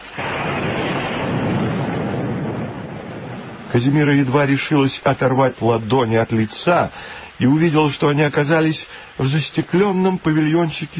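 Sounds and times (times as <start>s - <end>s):
deep thunder rumbling: 0.0s - 6.9s
heavy rain: 0.0s - 10.9s
speech: 3.8s - 10.9s.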